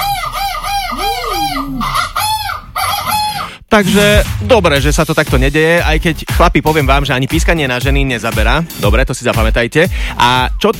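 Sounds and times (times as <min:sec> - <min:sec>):
rooster-like crowing from fowl as mating calls: 0:00.0 - 0:03.5
speech: 0:03.7 - 0:10.7.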